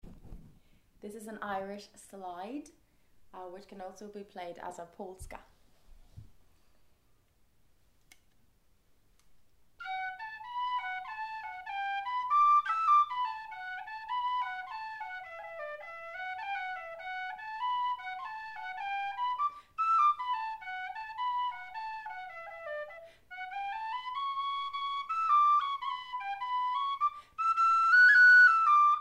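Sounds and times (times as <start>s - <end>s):
Irish slide dance tune: 9.8s - 29.0s.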